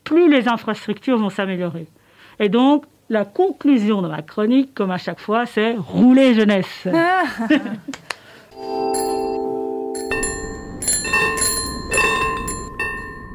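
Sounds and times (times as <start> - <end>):
speech: 0.1 - 9.0
laughter: 6.9 - 8.2
old-fashioned bicycle bell ringing: 8.6 - 13.3.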